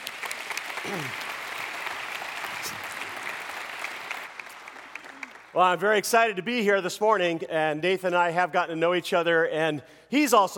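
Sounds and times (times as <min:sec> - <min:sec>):
sizable audience applauding a preacher: 0:00.0 - 0:06.0
speech: 0:00.8 - 0:01.3, 0:05.6 - 0:10.5.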